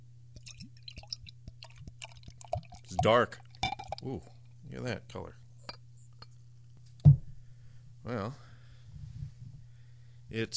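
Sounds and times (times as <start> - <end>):
beer poured from a capped bottle into a goblet: 0.4 - 4.2
speech: 3.0 - 3.4, 4.0 - 5.4, 8.0 - 8.5, 10.3 - 10.5.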